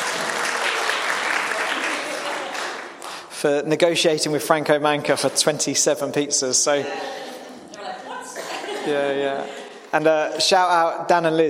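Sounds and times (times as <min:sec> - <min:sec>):
audience applause at a Friday evening pizza gathering: 0:00.0 - 0:03.3
speech: 0:03.4 - 0:07.3, 0:08.8 - 0:11.4
laughter: 0:06.7 - 0:10.0.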